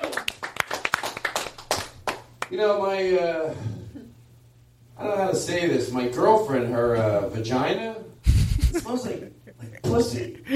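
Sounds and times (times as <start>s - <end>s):
small crowd audience applause: 0.0s - 2.3s
speech: 2.5s - 3.8s, 5.0s - 8.0s, 8.7s - 9.3s, 10.0s - 10.5s
laughter: 8.3s - 9.9s.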